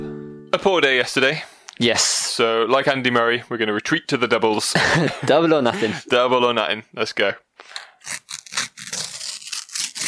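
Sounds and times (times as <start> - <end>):
speech: 0.6 - 8.3
laughter: 4.6 - 6.1
sticker packet being torn open: 7.7 - 10.0.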